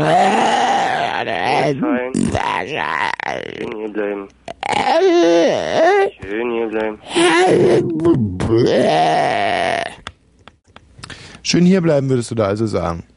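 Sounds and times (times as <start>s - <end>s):
man imitating drunken bawling and groaning: 0.0s - 3.8s, 4.5s - 6.2s, 7.0s - 10.1s
speech: 1.7s - 9.9s, 11.4s - 13.1s.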